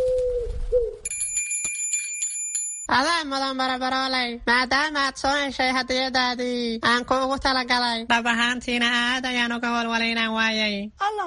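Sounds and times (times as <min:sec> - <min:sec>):
small bell tied to a pigeon's leg ringing: 0:01.0 - 0:02.9
speech: 0:02.9 - 0:11.2.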